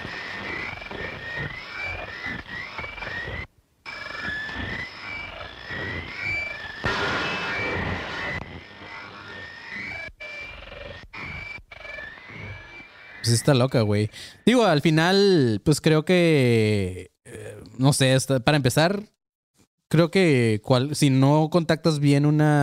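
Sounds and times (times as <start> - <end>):
shortwave radio static hiss: 0.0 - 10.1
shortwave radio broadcast of reversed-sounding music: 0.0 - 14.1
speech: 13.3 - 17.1, 17.8 - 19.2, 19.9 - 22.6.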